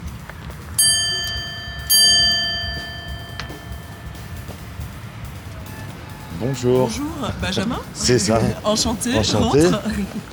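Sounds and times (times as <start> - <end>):
small doorbell ringing with bright metallic strikes: 0.8 - 4.9
speech: 6.4 - 10.3
laughter: 7.6 - 10.3.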